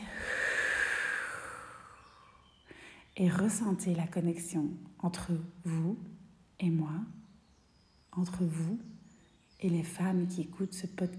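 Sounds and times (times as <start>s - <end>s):
slow breath during a guided relaxation exercise: 0.0s - 3.2s
speech: 3.2s - 7.2s, 8.1s - 9.0s, 9.6s - 11.1s.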